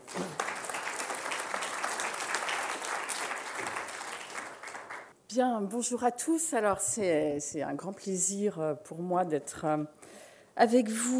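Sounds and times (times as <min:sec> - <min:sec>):
audience applause welcoming a speaker: 0:00.0 - 0:05.1
speech: 0:05.4 - 0:10.0, 0:10.6 - 0:11.1.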